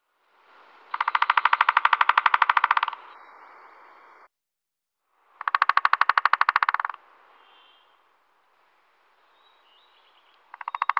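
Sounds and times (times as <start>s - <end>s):
three-toed woodpecker Picoides tridactylus drumming: 0.9s - 3.2s, 5.4s - 7.0s, 10.3s - 10.9s.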